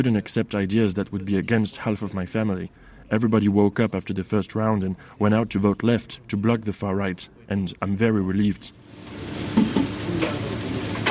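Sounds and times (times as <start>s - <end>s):
speech: 0.0s - 9.4s
steaks and burgers topped with eggs and cheese sizzling on a kitchen grill: 8.8s - 11.0s
pans or utensils clattering: 9.5s - 11.0s.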